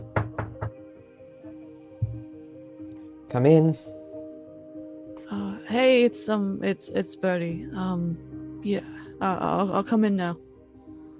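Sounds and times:
knocking on a door: 0:00.0 - 0:00.8, 0:02.0 - 0:02.3
speech: 0:03.3 - 0:03.9, 0:05.7 - 0:10.4.

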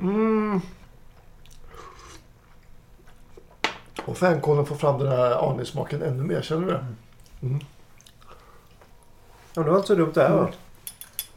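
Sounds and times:
speech: 0:00.0 - 0:00.8, 0:04.2 - 0:07.7, 0:09.6 - 0:10.6
faint mouth sounds: 0:00.0 - 0:02.3, 0:07.2 - 0:08.5
low noise: 0:00.0 - 0:11.3
quiet chewing and biting of a poached quail egg with nettle soup: 0:01.1 - 0:03.6, 0:07.1 - 0:09.2.

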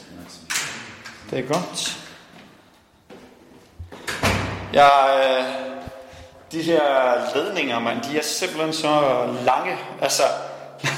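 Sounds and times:
speech: 0:01.3 - 0:02.0, 0:04.7 - 0:05.7, 0:06.5 - 0:10.9
door thud and scraping sliding sweep: 0:04.0 - 0:04.7
laughter: 0:10.8 - 0:10.9.

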